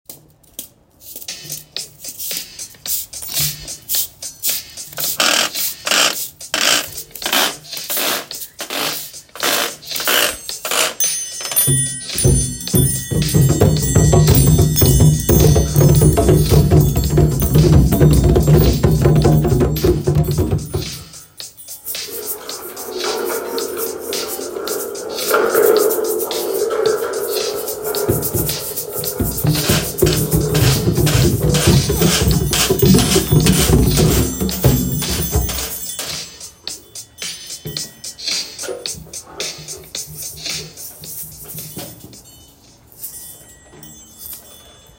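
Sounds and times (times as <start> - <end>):
storm percussion: 0.1 - 44.9.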